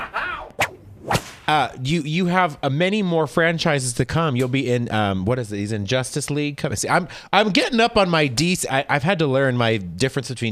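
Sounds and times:
whooshing whip swing: 0.5 - 1.5
speech: 1.5 - 10.5.

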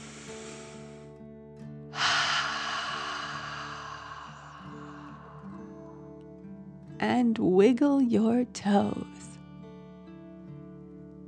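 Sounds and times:
deep slow breath during a relaxation exercise: 0.0 - 1.1, 1.9 - 6.6
soft sustained musical tone: 2.0 - 7.2
speech: 7.0 - 9.2.

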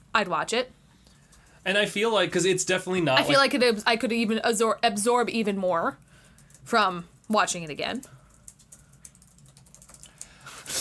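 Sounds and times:
speech: 0.2 - 0.8, 1.6 - 6.0, 6.6 - 8.2
typing on a computer keyboard: 6.2 - 10.4.

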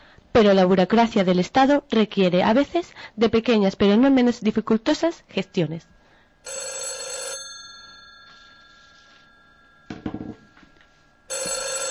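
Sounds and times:
speech: 0.4 - 6.7
telephone bell ringing on a call to a customer service line: 6.4 - 11.8.

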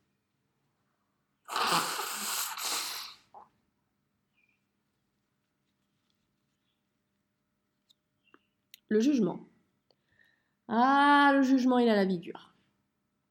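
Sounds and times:
person blowing nose: 1.5 - 3.4
faint small clicks and rustles: 4.4 - 7.0
speech: 8.9 - 9.5, 10.7 - 12.5.

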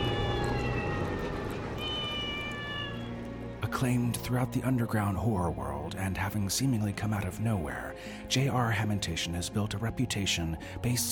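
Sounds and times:
cat meowing in a long drawn-out wail: 0.0 - 1.2, 1.8 - 3.2
speech: 3.7 - 11.0.

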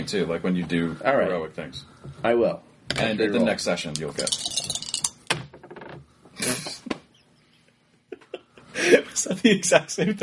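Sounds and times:
speech: 0.0 - 4.8, 9.2 - 10.2
dice rolled in a game clattering across a hard surface: 4.0 - 5.2.

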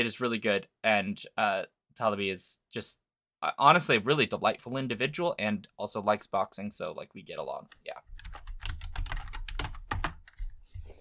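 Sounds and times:
speech: 0.0 - 8.4
typing on a noisy computer keyboard: 8.1 - 10.4.

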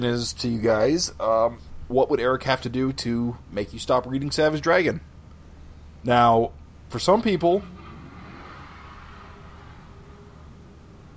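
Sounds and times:
speech: 0.0 - 5.1, 6.0 - 7.8
car engine revving outside: 7.0 - 11.1.

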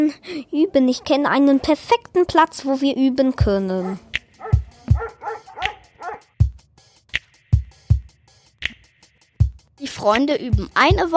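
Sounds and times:
speech: 0.0 - 4.2, 9.8 - 11.1
dog barking: 0.7 - 1.9, 3.8 - 6.3.

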